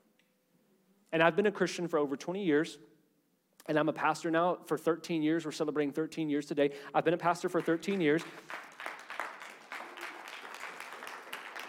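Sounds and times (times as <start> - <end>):
speech: 1.1 - 3.0, 3.7 - 8.7
crowd applauding: 7.4 - 11.6.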